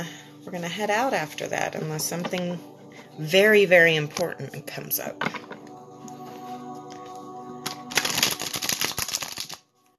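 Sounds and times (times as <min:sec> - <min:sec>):
speech: 0:00.0 - 0:05.5
tarot cards being shuffled: 0:07.6 - 0:09.6.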